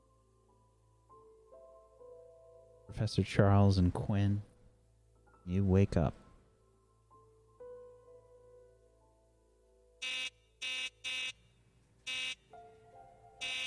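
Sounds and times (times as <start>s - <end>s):
speech: 2.9s - 4.5s, 5.5s - 6.2s
harsh apartment door buzzer: 10.0s - 11.4s, 12.1s - 12.5s, 13.4s - 13.6s.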